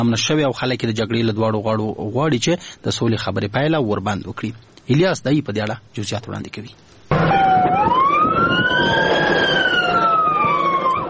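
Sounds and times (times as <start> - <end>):
speech: 0.0 - 7.4
ambulance siren wailing: 7.1 - 11.0.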